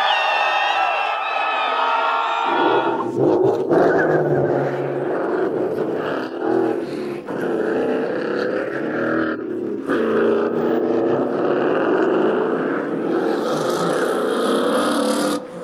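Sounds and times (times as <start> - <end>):
crowd cheering: 0.0 - 5.0
modified Ford Mustang GT engines with nitrous roaring in a drag race: 0.0 - 15.6.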